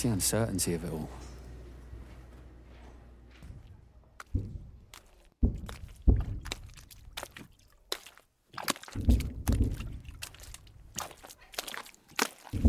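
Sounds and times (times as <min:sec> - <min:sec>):
speech: 0:00.0 - 0:01.2
heavy footsteps wading through muddy water at the front line: 0:04.2 - 0:12.6.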